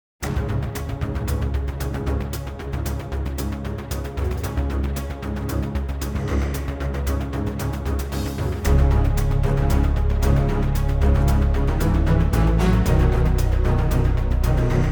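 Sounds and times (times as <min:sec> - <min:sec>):
combat music: 0:00.2 - 0:14.8.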